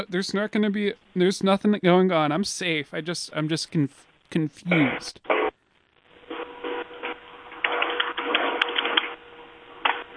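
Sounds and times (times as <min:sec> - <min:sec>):
speech: 0:00.0 - 0:05.4
keyboard typing: 0:07.6 - 0:09.2.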